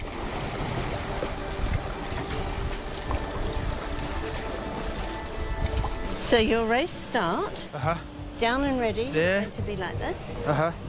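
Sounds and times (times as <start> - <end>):
water churning and lapping around a boat hull moving off from a dock: 0.0 - 8.7
speech: 6.3 - 10.8.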